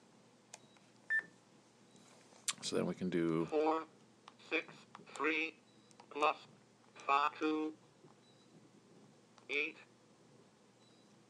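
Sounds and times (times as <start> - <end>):
electronic calculator beep: 0.6 - 1.3, 10.8 - 11.1
speech: 2.6 - 3.9, 4.5 - 7.8, 9.5 - 9.9.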